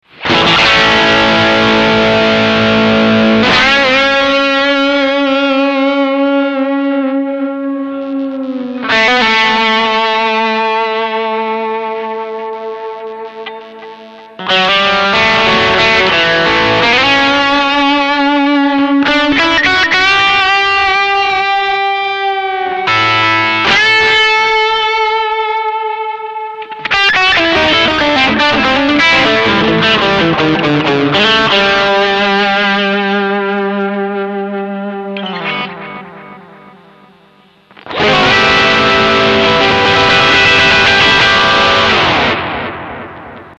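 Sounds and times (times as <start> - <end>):
guitar with medium delay pedal effect: 0.0 - 43.5.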